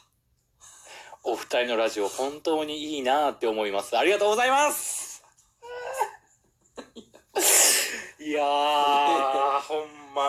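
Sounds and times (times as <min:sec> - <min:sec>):
speech: 0:01.2 - 0:05.0, 0:08.3 - 0:10.2
person sobbing: 0:05.6 - 0:06.3, 0:07.3 - 0:10.2
person sniffling: 0:07.4 - 0:08.2.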